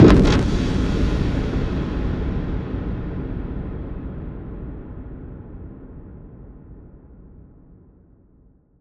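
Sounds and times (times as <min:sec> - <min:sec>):
cinematic impact: 0:00.0 - 0:05.4.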